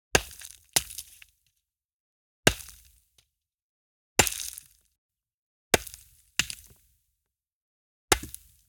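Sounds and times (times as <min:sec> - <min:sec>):
multiple rocks hitting dirt: 0:00.1 - 0:01.3, 0:02.5 - 0:03.0, 0:04.2 - 0:04.9, 0:05.8 - 0:06.9, 0:08.1 - 0:08.6.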